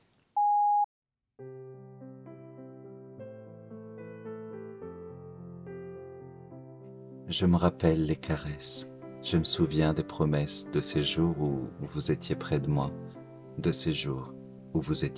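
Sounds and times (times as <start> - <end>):
short steady electronic beep: 0.4 - 0.9
speech: 7.3 - 15.1.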